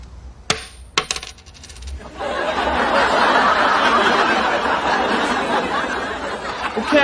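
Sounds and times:
coin flipped in a coin toss and landing: 0:00.5 - 0:02.1
lively crowd chatter and laughter: 0:02.0 - 0:07.0.

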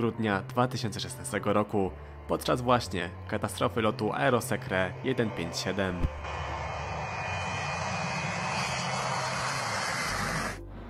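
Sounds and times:
speech: 0:00.0 - 0:06.5
Boeing 727 jet airliner engines roaring: 0:06.0 - 0:10.6.

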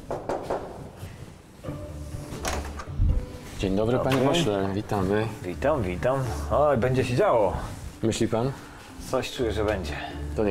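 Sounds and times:
knocking on a door of a member of parliament's home: 0:00.1 - 0:00.8
door being handled and opened: 0:02.4 - 0:03.0
speech: 0:03.6 - 0:10.4.

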